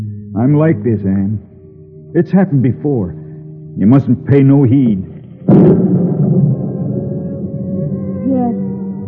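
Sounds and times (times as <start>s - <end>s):
speech: 0.4s - 1.5s, 2.1s - 3.2s, 3.7s - 6.1s
thunder rumbling from an approaching storm: 5.4s - 9.0s.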